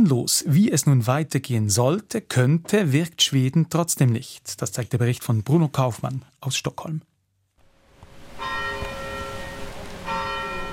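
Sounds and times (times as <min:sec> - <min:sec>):
speech: 0:00.0 - 0:07.1
bells of a cathedral on Stockholm's old town island ringing: 0:08.4 - 0:10.7.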